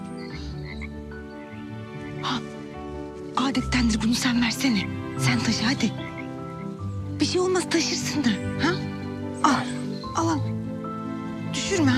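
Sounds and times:
frog croaking: 0.0s - 1.4s, 5.2s - 6.8s
speech: 3.5s - 6.1s, 7.2s - 10.6s, 11.7s - 11.9s.

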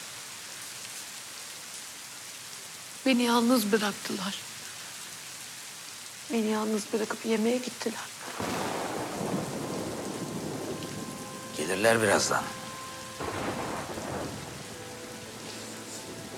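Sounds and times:
steady rain: 0.0s - 16.3s
speech: 3.0s - 4.5s, 6.3s - 8.5s, 11.7s - 12.6s
loud crack of thunder rumbling: 8.3s - 12.5s, 13.2s - 14.7s.

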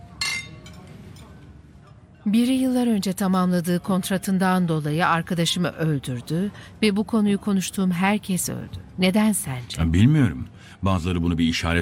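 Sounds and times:
glasses clinking in a toast: 0.1s - 1.3s
speech: 2.3s - 11.8s.

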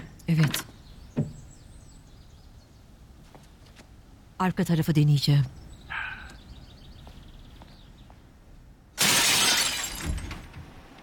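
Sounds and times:
speech: 0.3s - 1.3s, 4.4s - 5.6s
faint chirps: 5.4s - 7.8s
bright glass shards scattering and tinkling: 9.0s - 10.2s
window glass being smashed to break into a locked house: 9.0s - 10.4s.

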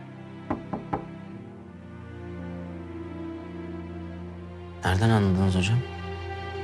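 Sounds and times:
knocking on a door: 0.5s - 1.2s
speech: 4.8s - 6.0s.

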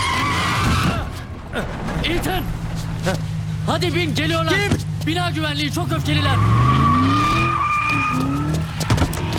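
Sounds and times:
car tires skidding with shrill squeal: 0.0s - 3.7s, 5.7s - 9.3s
car engine roaring while accelerating hard: 0.0s - 9.3s
speech: 1.6s - 6.9s.

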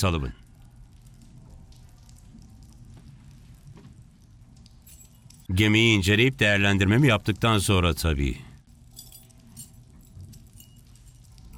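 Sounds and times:
speech: 0.0s - 0.4s, 5.5s - 8.5s
keys jangling: 4.8s - 5.5s, 8.8s - 11.5s.

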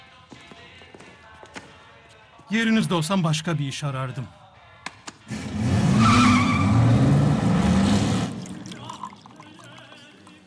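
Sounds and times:
speech: 2.5s - 4.4s
car tires squealing: 5.3s - 8.4s
car engine roaring on a test drive: 5.3s - 8.6s.

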